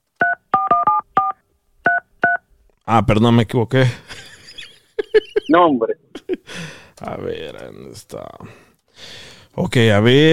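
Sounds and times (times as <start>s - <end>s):
touch-tone phone keypad being dialed: 0.2s - 2.4s
speech: 2.9s - 4.3s, 5.5s - 10.3s
laughter: 4.0s - 6.5s.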